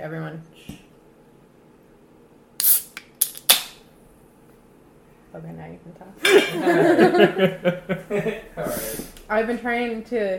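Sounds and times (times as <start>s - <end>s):
speech: 0.0s - 0.8s, 5.3s - 10.3s
bottle being cracked open with hissing crackle: 2.6s - 3.8s
laughter: 6.2s - 9.1s.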